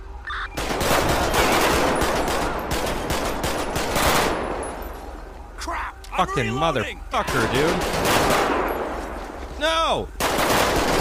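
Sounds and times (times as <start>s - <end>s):
automatic gunfire in a police simulation video game set in a desert: 0.6s - 4.4s, 7.3s - 8.7s, 10.2s - 11.0s
speech: 6.2s - 8.0s, 9.6s - 10.6s.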